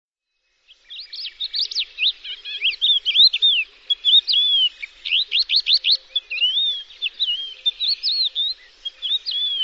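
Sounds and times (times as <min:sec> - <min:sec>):
bird singing a fast jumble of high twittering notes and slurred whistles: 0:00.2 - 0:09.6.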